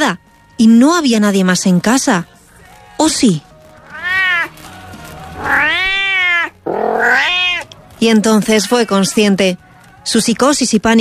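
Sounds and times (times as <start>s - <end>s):
speech: 0.0s - 2.3s, 3.0s - 3.5s, 8.0s - 11.0s
cat meowing with rising wail: 3.9s - 4.5s, 5.4s - 7.7s.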